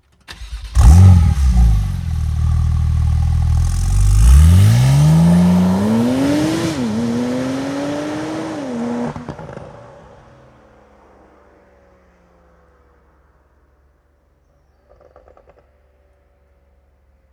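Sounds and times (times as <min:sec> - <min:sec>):
car engine starting: 0:00.0 - 0:13.8.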